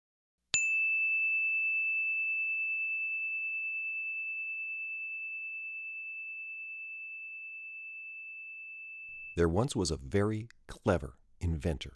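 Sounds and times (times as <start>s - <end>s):
bell chime with a pure sustained tone: 0.6s - 9.2s
speech: 9.4s - 11.9s.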